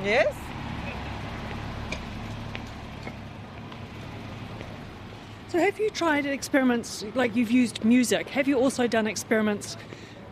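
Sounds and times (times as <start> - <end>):
speech: 0.0 - 0.4, 5.5 - 10.1
low idling engine rumble: 0.0 - 7.3
street traffic humming at a bus stop: 0.0 - 10.3.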